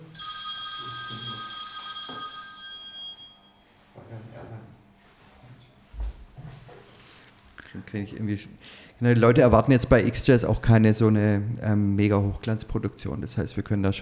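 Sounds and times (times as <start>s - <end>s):
telephone ringing with a bright electronic tone: 0.0s - 4.0s
speech: 7.8s - 14.0s.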